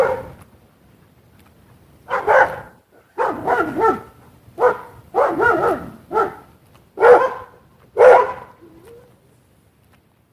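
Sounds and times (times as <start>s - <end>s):
dogs barking: 0.0s - 0.4s, 2.1s - 8.6s.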